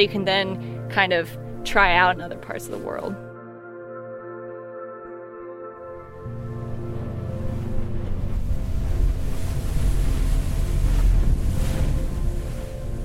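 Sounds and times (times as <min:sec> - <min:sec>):
speech: 0:00.0 - 0:03.2
ocean surf around a moving boat off Santa Cruz Island in fog: 0:05.9 - 0:13.0
gusting wind around a moving boat: 0:06.1 - 0:13.0
low engine-like hum of a boat: 0:06.2 - 0:13.0.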